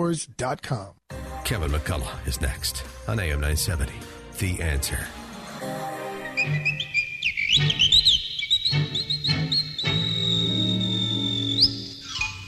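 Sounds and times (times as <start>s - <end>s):
speech: 0.0s - 5.8s, 6.4s - 6.9s
soft instrumental backing music: 1.1s - 11.2s
person whistling a tune: 7.7s - 12.4s.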